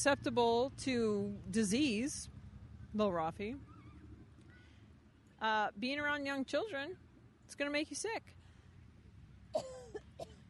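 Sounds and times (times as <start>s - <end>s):
speech: 0.0s - 2.3s, 2.9s - 3.7s, 5.4s - 8.4s, 9.5s - 10.3s
person coughing from swallowing something down the wrong pipe: 9.6s - 10.4s.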